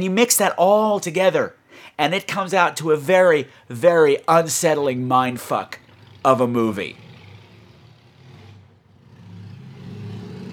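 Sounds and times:
speech: 0.0s - 7.1s
car engine revving on the street: 5.5s - 10.5s.

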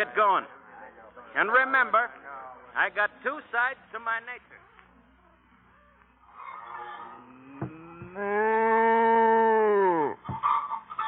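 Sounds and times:
speech: 0.0s - 0.6s, 1.3s - 2.2s, 2.8s - 4.6s, 8.2s - 8.6s
cow mooing in a barn on a work farm: 6.3s - 10.2s.

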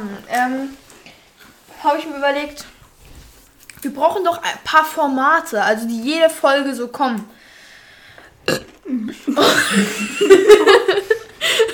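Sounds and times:
speech: 0.1s - 0.8s, 1.8s - 2.7s, 3.8s - 7.4s, 8.5s - 11.2s
person burping into a microphone: 8.4s - 10.2s
person laughing: 9.2s - 11.7s.

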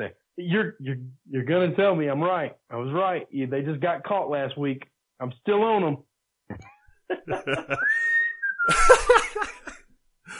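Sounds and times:
speech: 0.0s - 10.3s
laughter: 6.6s - 9.8s
person whistling a sustained gliding note: 7.7s - 9.2s.

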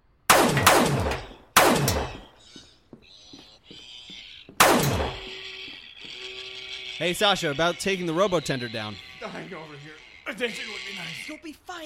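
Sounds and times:
gunfire blasts in a video game shootout against a robot bartender: 0.3s - 2.2s, 4.6s - 5.3s
speech: 7.0s - 11.8s.

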